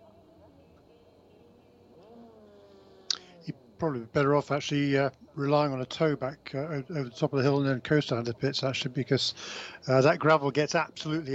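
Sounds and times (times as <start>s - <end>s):
Gibson V8 engine built in Repton Derbyshire in LMP2 race car restarting: 1.9s - 3.4s
speech: 3.4s - 11.3s.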